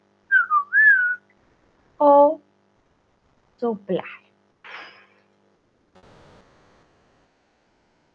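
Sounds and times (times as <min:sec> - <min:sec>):
person whistling a short three-note phrase: 0:00.3 - 0:01.2
speech: 0:03.6 - 0:04.2.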